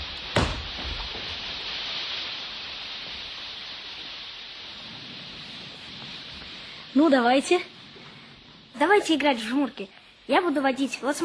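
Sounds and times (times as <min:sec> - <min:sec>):
rain falling: 0:00.0 - 0:11.2
sharp knock: 0:00.3 - 0:01.3
speech: 0:07.0 - 0:07.7, 0:08.8 - 0:11.2.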